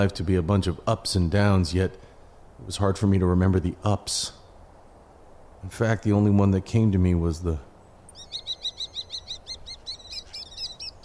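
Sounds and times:
speech: 0.0 - 4.4, 5.6 - 7.7
faint hiss: 0.0 - 11.0
small bird perched on a branch chirping: 7.8 - 11.0.

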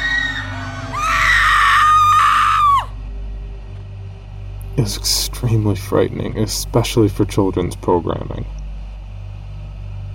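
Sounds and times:
loud high-pitched scream from behind an old rusted closed door: 0.0 - 3.0
steady low rumble: 0.0 - 10.1
speech: 4.8 - 8.6.

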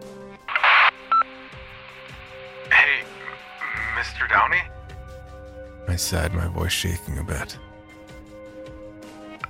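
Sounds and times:
short burst of radio static crackling: 0.5 - 1.4, 2.2 - 4.0
speech: 4.2 - 4.7, 5.9 - 7.7.

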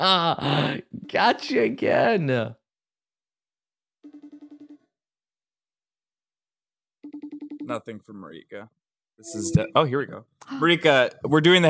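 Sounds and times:
speech: 0.0 - 2.6, 7.7 - 11.6
phone ringing with warbling pulses: 4.0 - 4.9, 7.0 - 7.8.

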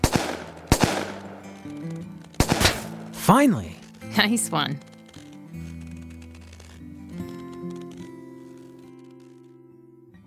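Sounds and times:
gunshots fired at swinging bottles and cans: 0.0 - 3.2
speech: 3.2 - 4.9.

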